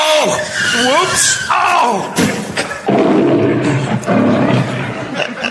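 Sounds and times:
speech: 0:00.2 - 0:03.5
laughter: 0:02.4 - 0:02.9, 0:03.5 - 0:05.4
lion roaring with a deep rumbling growl: 0:02.8 - 0:05.2.

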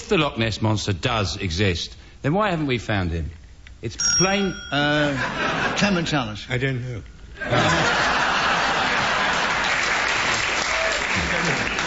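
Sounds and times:
speech: 0:00.1 - 0:08.0
people chuckling: 0:07.4 - 0:09.8, 0:11.1 - 0:11.8
audience round of applause: 0:07.8 - 0:11.8.

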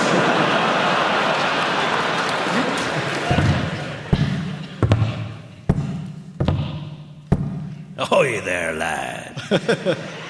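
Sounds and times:
laughter: 0:00.0 - 0:04.8, 0:08.0 - 0:10.2
heavy hollow wooden-leg footsteps thumping: 0:03.3 - 0:08.0
speech: 0:08.2 - 0:10.2.

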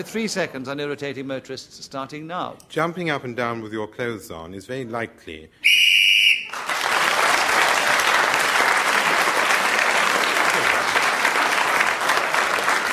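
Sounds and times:
speech: 0:00.0 - 0:06.0
short shrill whistle blast ending a round of a panel game: 0:05.6 - 0:06.6
loud steady audience applause: 0:06.4 - 0:12.9.

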